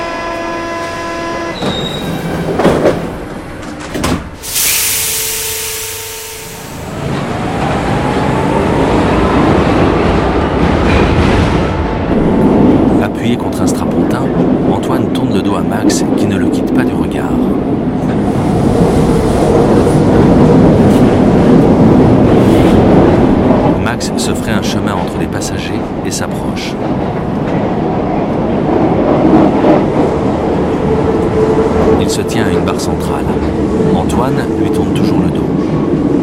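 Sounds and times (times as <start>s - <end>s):
metro train carriage steady loud rolling roar: 0.0s - 36.2s
metro train loud hissing burst: 4.4s - 6.9s.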